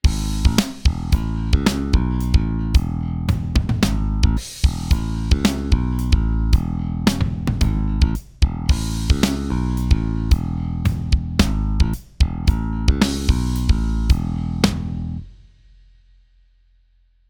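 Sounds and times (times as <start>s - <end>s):
kick drum with bass cut and boost: 0.0s - 9.2s, 9.9s - 14.4s.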